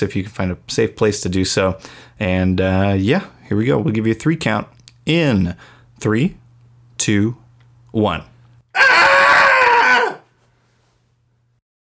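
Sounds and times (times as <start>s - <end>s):
speech: 0.0s - 6.4s, 7.0s - 8.3s
several voices screaming together: 8.8s - 10.2s.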